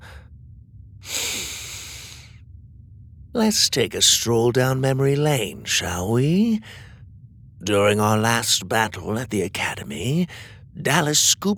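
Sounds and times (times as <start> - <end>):
man drawing a long deep inhale: 0.0 - 0.3, 1.0 - 2.4, 6.6 - 7.0, 10.3 - 10.7
speech: 3.3 - 6.9, 7.6 - 11.5.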